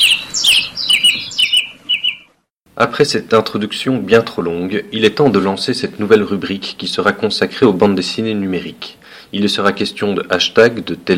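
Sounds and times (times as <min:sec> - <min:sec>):
small bird chirping in bright high tweets: 0:00.0 - 0:02.5
speech: 0:02.8 - 0:11.1.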